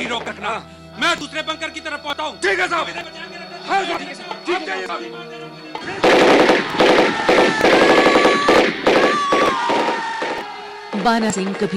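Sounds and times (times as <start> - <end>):
speech: 0.0 - 7.7, 11.0 - 11.7
Sten submachine gun firing rapid bursts in battle: 6.0 - 11.1.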